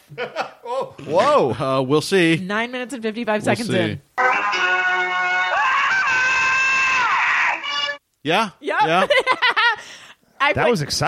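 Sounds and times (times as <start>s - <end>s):
speech: 0.1s - 4.3s, 8.2s - 9.2s, 10.5s - 11.0s
loud sustained high-pitched scream: 4.2s - 8.0s.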